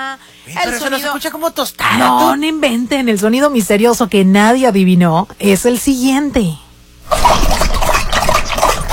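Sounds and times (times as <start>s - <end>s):
speech: 0.6s - 7.5s
dog drinking water: 7.1s - 8.9s.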